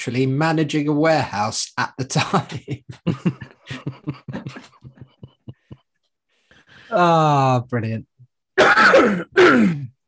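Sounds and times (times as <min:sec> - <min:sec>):
speech: 0:00.0 - 0:04.6, 0:06.9 - 0:09.9
laughter: 0:02.2 - 0:05.9
person clearing throat harshly: 0:08.6 - 0:10.0
person coughing with a gravelly hack: 0:08.6 - 0:10.0.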